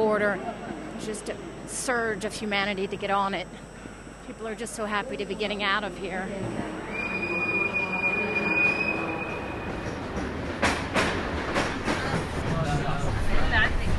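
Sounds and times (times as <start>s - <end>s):
speech: 0.2s - 3.7s, 4.3s - 6.8s
high metallic train wheel squeal: 6.9s - 10.0s
train cars rattling and clacking over the track: 9.8s - 13.9s.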